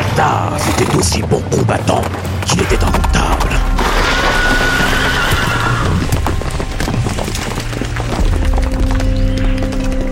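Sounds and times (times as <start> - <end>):
speech: 0.2 - 3.8
galloping hooves: 0.6 - 10.0
horse neighing: 3.8 - 6.3.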